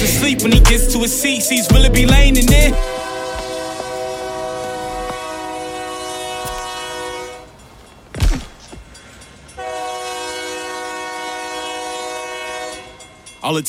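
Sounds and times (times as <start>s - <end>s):
speech: 0.2s - 3.1s, 13.5s - 13.6s
loud train horn blaring: 2.6s - 7.6s, 9.6s - 13.3s.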